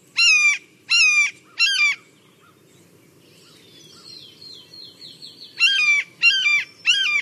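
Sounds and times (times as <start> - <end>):
faint twittering birdsong: 0.0 - 7.2
blue jay mimicking a red-tailed hawk call: 0.2 - 2.0, 5.6 - 7.2.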